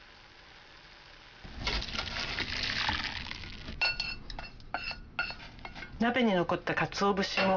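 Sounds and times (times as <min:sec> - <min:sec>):
dashi broth pouring through a strainer into a bowl: 0:01.5 - 0:03.7
clinks and clatter of metal and dishes being handled: 0:03.7 - 0:06.0, 0:07.2 - 0:07.5.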